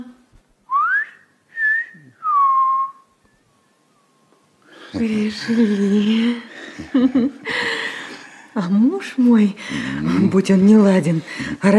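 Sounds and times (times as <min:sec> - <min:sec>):
man whistling a gentle tune: 0:00.7 - 0:03.8
speech: 0:04.9 - 0:07.7, 0:08.6 - 0:11.7
laughter: 0:05.4 - 0:08.2.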